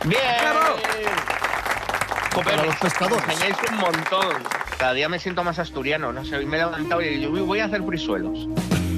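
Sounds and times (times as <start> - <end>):
speech: 0.0 - 0.3, 2.4 - 8.8
crowd applauding: 0.0 - 5.3.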